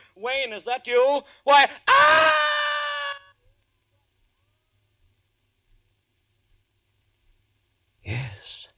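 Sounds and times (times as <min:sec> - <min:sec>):
speech: 0:00.2 - 0:02.4
woman screaming: 0:01.9 - 0:03.4.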